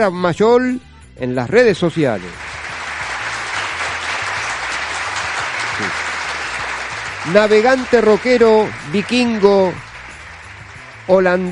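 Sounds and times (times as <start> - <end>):
speech: 0.0 - 2.5, 7.2 - 9.9, 11.1 - 11.5
sustained applause from a sizable crowd: 2.1 - 11.5.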